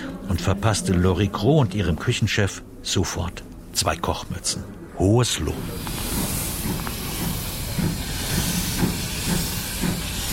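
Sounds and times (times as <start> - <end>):
speech: 0.4 - 6.2
old steam locomotive pulling away with hiss of steam and chuffs: 5.4 - 10.3
faint rail clatter: 5.5 - 10.3.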